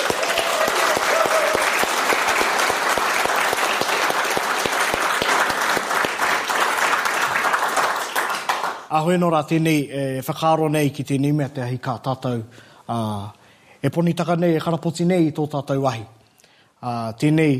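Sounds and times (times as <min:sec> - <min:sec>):
audience applause for the evening's speakers: 0:00.0 - 0:08.9
speech: 0:09.0 - 0:16.2, 0:16.8 - 0:17.5.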